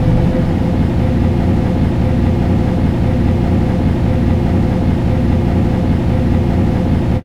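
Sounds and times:
bus interior ambience: 0:00.0 - 0:07.2.

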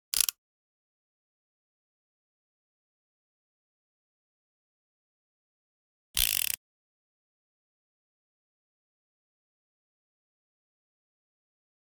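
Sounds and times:
.357 pistol chamber spinning: 0:06.2 - 0:06.6.

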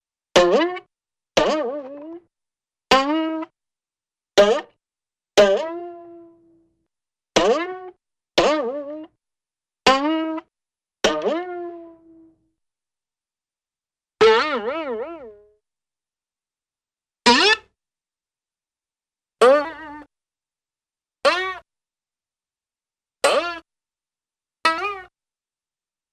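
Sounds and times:
cartoon boings with various decay lengths: 0:00.4 - 0:02.2, 0:02.9 - 0:03.5, 0:05.4 - 0:06.2, 0:07.4 - 0:09.1, 0:09.9 - 0:12.0, 0:14.2 - 0:15.4, 0:17.3 - 0:17.7, 0:19.4 - 0:20.1, 0:21.2 - 0:21.6, 0:23.2 - 0:23.7, 0:24.7 - 0:25.1.

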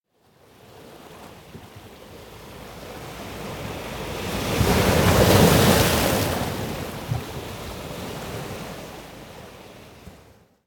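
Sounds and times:
hard slow ocean waves on a rocky coast: 0:02.6 - 0:09.9.

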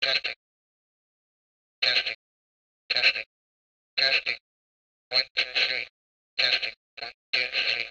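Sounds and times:
walkie-talkie transmission: 0:00.0 - 0:00.4, 0:01.8 - 0:02.2, 0:02.9 - 0:03.3, 0:04.0 - 0:04.4, 0:05.1 - 0:07.8.

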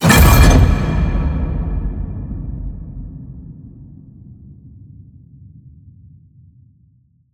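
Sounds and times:
designed cinematic metal crash hit: 0:00.0 - 0:04.1.

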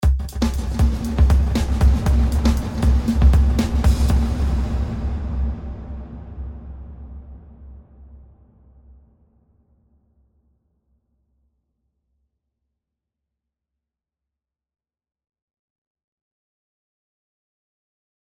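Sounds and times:
impulse response in a big hall: 0:00.5 - 0:08.0.

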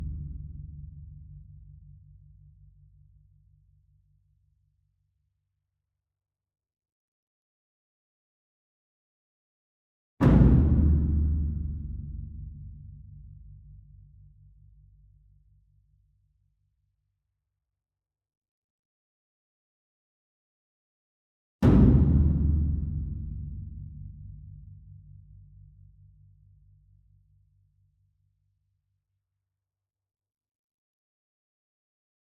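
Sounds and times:
distant ensemble concert bass drum and taiko hit: 0:10.3 - 0:12.6, 0:21.7 - 0:24.1.

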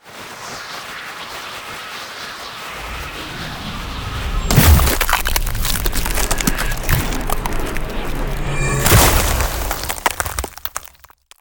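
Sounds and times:
ice spell effect: 0:02.7 - 0:11.3.

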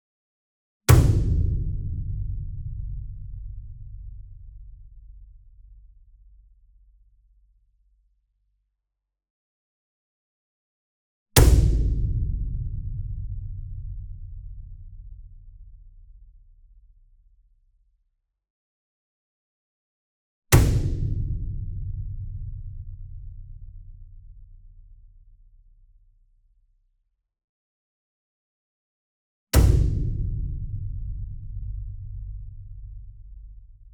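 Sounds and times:
40 inch concert bass drum hit with whip beater: 0:00.9 - 0:04.4, 0:11.4 - 0:15.1, 0:20.6 - 0:24.0, 0:29.6 - 0:33.2.

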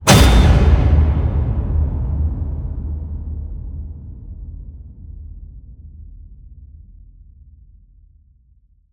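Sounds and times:
massive cinematic hits: 0:00.0 - 0:05.4.

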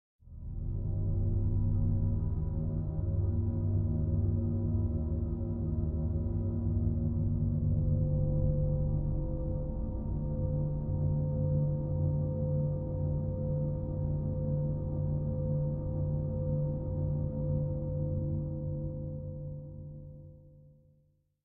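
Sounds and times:
low sub drone pad for suspense: 0:00.3 - 0:19.6.

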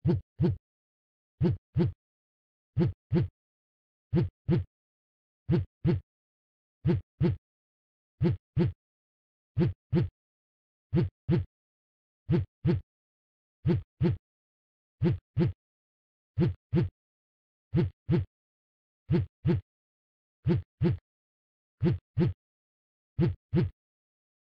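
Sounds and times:
phone vibrating in a heartbeat pattern: 0:00.0 - 0:00.6, 0:01.4 - 0:02.0, 0:02.8 - 0:03.3, 0:04.1 - 0:04.7, 0:05.5 - 0:06.0, 0:06.8 - 0:07.4, 0:08.2 - 0:08.8, 0:09.6 - 0:10.1, 0:10.9 - 0:11.5, 0:12.3 - 0:12.8, 0:13.6 - 0:14.2, 0:15.0 - 0:15.6, 0:16.4 - 0:16.9, 0:17.7 - 0:18.3, 0:19.1 - 0:19.6, 0:20.4 - 0:21.0, 0:21.8 - 0:22.4, 0:23.2 - 0:23.8.

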